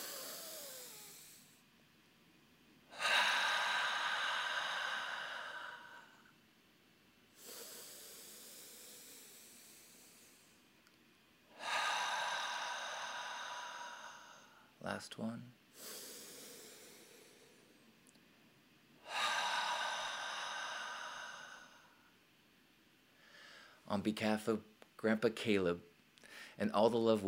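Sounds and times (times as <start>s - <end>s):
deep breaths in through the nose and out: 0.0s - 1.6s, 2.9s - 6.3s, 7.3s - 10.6s, 11.5s - 14.8s, 15.8s - 17.8s, 19.0s - 22.1s, 23.2s - 23.8s, 26.2s - 26.6s
speech: 14.9s - 16.0s, 24.0s - 25.9s, 26.6s - 27.2s.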